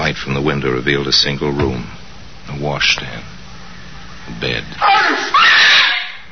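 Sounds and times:
speech: 0.1 - 3.4, 4.3 - 5.6
woman screaming: 4.8 - 6.2.

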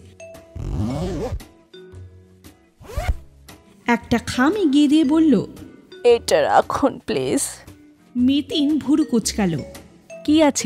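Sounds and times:
zipper of a vanity handbag being pulled open: 0.6 - 1.5, 2.8 - 3.3
speech: 3.9 - 10.6.

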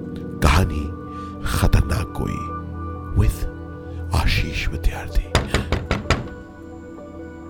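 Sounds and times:
speech: 0.4 - 2.6, 4.2 - 5.8
loud knocking on a door: 5.3 - 6.6.

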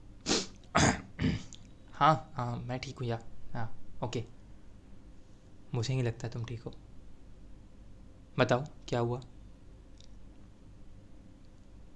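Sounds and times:
rough throat clearing: 0.7 - 1.6
speech: 2.0 - 4.4, 5.7 - 6.8, 8.4 - 9.3.

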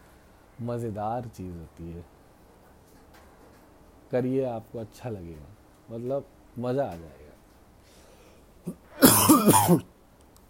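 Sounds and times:
speech: 0.6 - 2.2, 4.1 - 7.2, 8.7 - 9.9
short gravelly throat clearing: 8.6 - 9.9.

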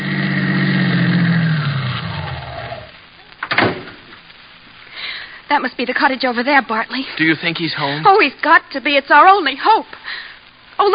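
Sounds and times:
car driving up, radio drama sound effect: 0.0 - 3.0
speech: 5.5 - 10.9.

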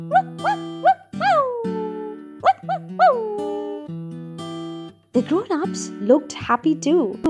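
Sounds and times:
puppy giving high-pitched yips and barks: 0.0 - 3.9
steady music: 0.0 - 7.2
speech: 0.1 - 0.6, 5.2 - 7.2.

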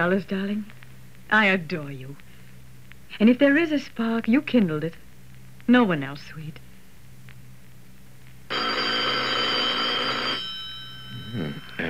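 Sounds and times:
speech: 0.0 - 2.2, 3.1 - 5.0, 5.7 - 6.6
telephone bell ringing with metallic jangle: 8.5 - 11.8.

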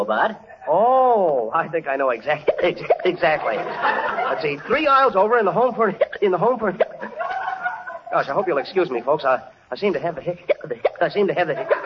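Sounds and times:
speech: 0.0 - 7.0, 8.1 - 11.8
man making voiced talk-like sounds: 0.0 - 7.1, 8.1 - 11.8
man hiccuping: 2.4 - 3.2, 5.9 - 7.1, 10.5 - 11.2
laughter: 2.6 - 5.1, 6.7 - 9.0, 11.4 - 11.8.

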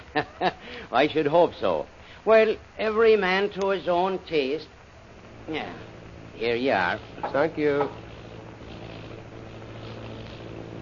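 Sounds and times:
speech: 0.2 - 4.8, 5.5 - 8.0
airplane engine droning: 4.2 - 10.8.

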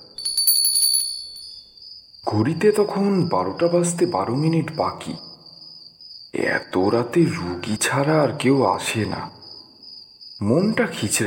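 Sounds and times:
doorbell ringing at a house door: 0.0 - 1.7
speech: 2.3 - 5.3, 6.3 - 9.4, 10.4 - 11.2.

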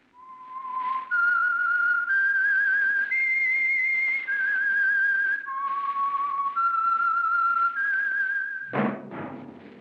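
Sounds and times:
whistled signal tune: 0.1 - 8.8
brief thump: 8.7 - 9.7.

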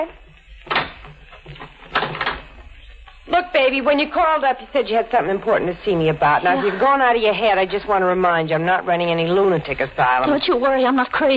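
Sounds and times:
speech: 0.0 - 0.2, 3.6 - 11.3
door shutting with a solid thump: 0.6 - 2.6.

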